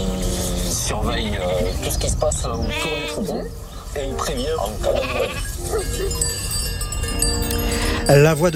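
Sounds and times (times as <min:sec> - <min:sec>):
speech: 0:01.0 - 0:06.5, 0:08.1 - 0:08.5
sheep bells ringing and clinking in the Pyrenees: 0:01.6 - 0:08.5
ewes bleating in the Pyrenees: 0:02.6 - 0:03.6, 0:04.2 - 0:06.3.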